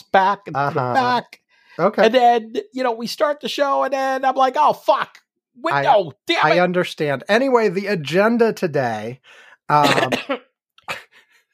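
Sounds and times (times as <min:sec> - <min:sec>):
speech: 0:00.1 - 0:10.5
loud rough throaty cough: 0:09.8 - 0:11.1.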